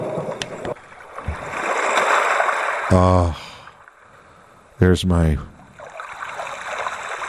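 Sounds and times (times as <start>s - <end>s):
small sound machine playing ocean waves washing on a shore: 0.0s - 4.3s, 5.7s - 7.2s
speech: 2.9s - 3.4s, 4.8s - 5.5s.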